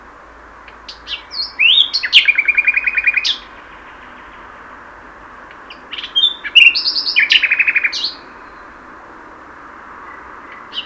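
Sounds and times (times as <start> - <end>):
Common nightingale Luscinia megarhynchos singing: 0.7 - 4.6, 5.5 - 8.8, 10.0 - 10.8.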